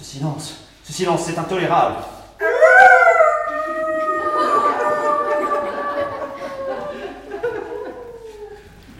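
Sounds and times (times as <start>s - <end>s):
speech: 0.1s - 3.0s
dog howling in a long wavering cry: 2.4s - 7.2s
laughter: 4.0s - 8.8s.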